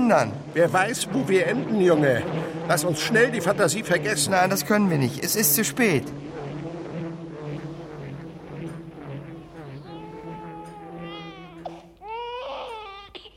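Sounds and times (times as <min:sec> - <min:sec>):
low droning hum: 0:00.0 - 0:12.1
speech: 0:00.1 - 0:06.4
child crying: 0:09.8 - 0:13.3.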